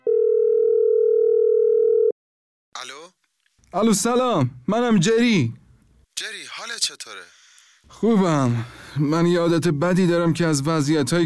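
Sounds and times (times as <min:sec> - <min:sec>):
steady telephone tone as a call is placed: 0:00.0 - 0:02.2
speech: 0:03.7 - 0:05.6, 0:06.2 - 0:11.2.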